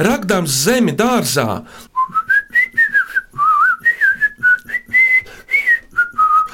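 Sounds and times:
speech: 0:00.0 - 0:01.9
person whistling a lilting tune: 0:02.0 - 0:06.5.

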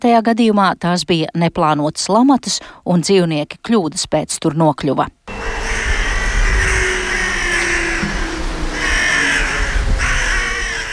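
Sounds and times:
speech: 0:00.0 - 0:05.8
steady low rumble of outdoor noise: 0:05.2 - 0:10.9
crows cawing: 0:05.3 - 0:10.9.

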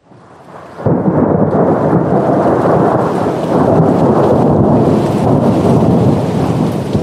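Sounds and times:
heavy rain in a late-October storm: 0:00.0 - 0:07.0
deep rumbling thunder in a late-October storm: 0:00.1 - 0:07.0.

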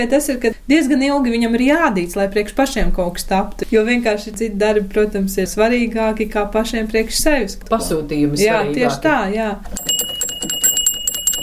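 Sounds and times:
speech: 0:00.0 - 0:09.8
small sauna bell ringing: 0:09.8 - 0:11.4.

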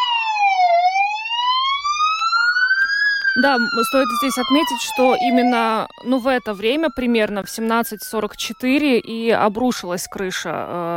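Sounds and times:
emergency rescue siren wailing during a memorial ceremony: 0:00.0 - 0:10.9
speech: 0:03.4 - 0:10.9.

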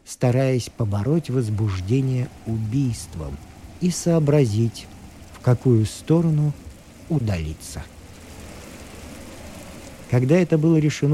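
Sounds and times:
steady rain falling: 0:00.0 - 0:11.1
speech: 0:00.1 - 0:08.0, 0:10.1 - 0:11.1.

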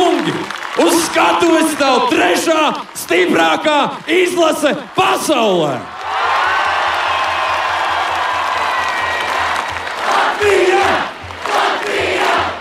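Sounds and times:
dense applause from a large crowd: 0:00.0 - 0:12.6
speech: 0:00.2 - 0:06.6
crowd of tens of thousands roaring welcoming home an ice hockey team: 0:00.8 - 0:12.6
people whooping: 0:06.0 - 0:09.8.

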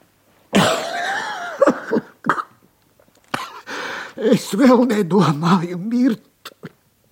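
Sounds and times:
man coughing and croaking hoarsely: 0:00.5 - 0:02.7, 0:03.3 - 0:03.7
speech: 0:04.2 - 0:06.8.

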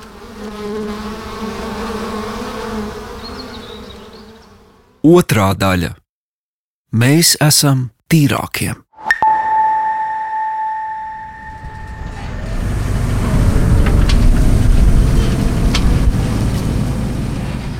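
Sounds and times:
speech: 0:05.0 - 0:06.0, 0:06.9 - 0:08.8
steady high electronic tone: 0:09.0 - 0:12.2
tractor engine rumbling while spraying a chemical onto a field in Latvia: 0:11.7 - 0:17.7.

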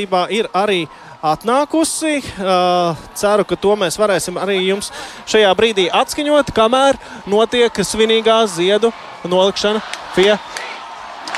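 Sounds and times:
speech: 0:00.0 - 0:10.7
large crowd of fans chanting in unison at a ceremonial flower laying: 0:09.0 - 0:11.3.

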